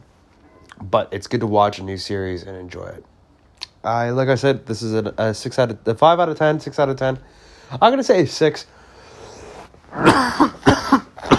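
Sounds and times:
speech: 0.9s - 3.1s, 3.8s - 8.8s, 9.9s - 10.6s
harsh coughing: 9.9s - 11.3s
throat clearing: 9.9s - 11.3s.

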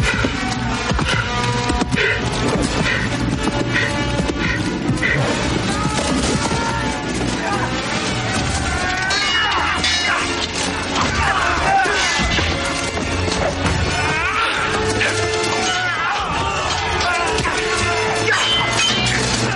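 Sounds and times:
full musical score: 0.0s - 19.5s
swords clashing in a medieval battle: 8.6s - 19.5s.

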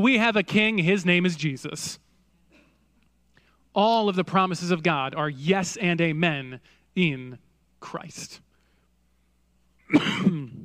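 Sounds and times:
speech: 0.0s - 2.0s, 3.8s - 8.4s, 9.9s - 10.6s
person clearing a dry throat: 9.9s - 10.6s.

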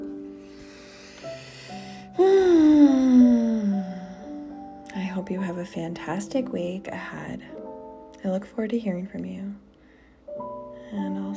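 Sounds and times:
long voiced deep breath out: 0.4s - 4.6s, 9.8s - 10.3s
speech: 5.3s - 7.6s, 8.2s - 9.7s, 10.4s - 11.3s.

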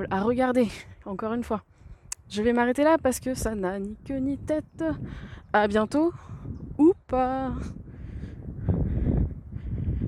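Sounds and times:
speech: 0.0s - 7.8s
wind blowing outdoors in a forest: 0.0s - 10.0s.

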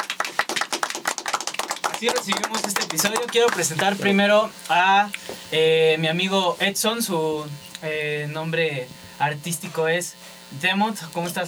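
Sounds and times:
applause: 0.0s - 4.0s
speech: 2.0s - 11.4s.

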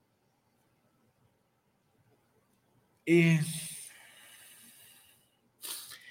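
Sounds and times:
speech: 3.1s - 3.6s
sharper louder breath rushing in during alternate nostril breathing: 3.9s - 6.1s
soft airy exhale through the nose during alternate nostril breathing: 3.9s - 6.1s.

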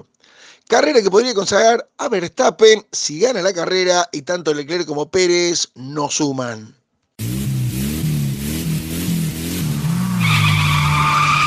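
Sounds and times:
speech: 0.0s - 6.8s
race car engine surging: 7.2s - 11.4s
race car tyres skidding and squealing: 9.9s - 11.4s.

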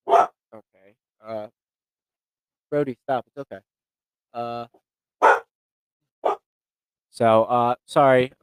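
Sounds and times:
dog barking: 0.0s - 0.4s, 5.2s - 5.6s, 6.2s - 6.5s
speech: 2.7s - 4.8s, 7.2s - 8.4s.

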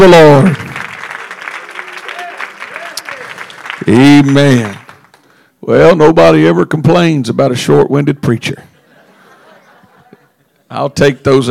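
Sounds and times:
speech: 0.0s - 0.6s, 3.9s - 4.8s, 5.6s - 8.7s, 10.7s - 11.4s
audience applause: 0.3s - 5.4s
laughter: 8.8s - 10.7s.

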